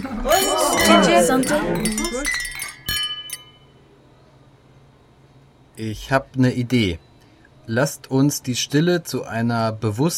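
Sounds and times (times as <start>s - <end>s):
voices chattering: 0.0s - 2.4s
several glasses clinking together in a toast: 0.0s - 3.8s
speech: 0.2s - 2.4s, 5.8s - 7.1s, 7.7s - 10.1s.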